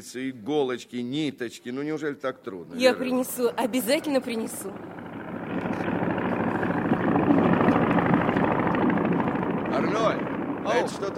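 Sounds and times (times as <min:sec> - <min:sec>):
speech: 0:00.0 - 0:05.0, 0:10.8 - 0:11.1
arriving airplane engine roar: 0:02.8 - 0:11.1.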